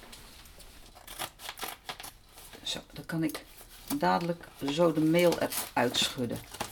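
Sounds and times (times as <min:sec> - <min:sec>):
scissors cutting open a paper bag of almond flour: 0:00.8 - 0:02.7, 0:03.9 - 0:06.7
speech: 0:02.7 - 0:06.6.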